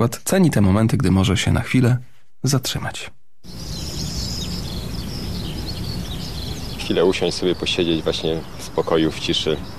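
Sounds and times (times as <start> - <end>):
speech: 0.0 - 3.7, 6.9 - 9.7
birdsong outdoors on a sunny day: 3.4 - 9.7
low rumble: 3.5 - 9.7.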